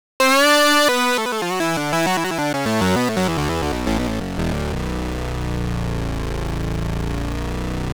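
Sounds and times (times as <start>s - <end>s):
synth tones from a software synthesizer: 0.2s - 7.5s.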